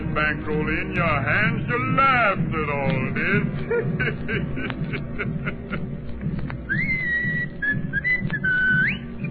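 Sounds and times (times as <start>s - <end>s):
low rumble: 0.0s - 9.3s
speech: 0.2s - 6.1s
laughter: 3.1s - 6.5s
person whistling a short wavering tune: 6.7s - 9.3s.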